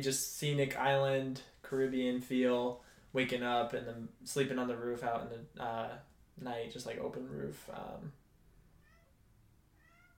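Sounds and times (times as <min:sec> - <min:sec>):
speech: 0:00.0 - 0:08.2
cat meowing: 0:08.8 - 0:10.1.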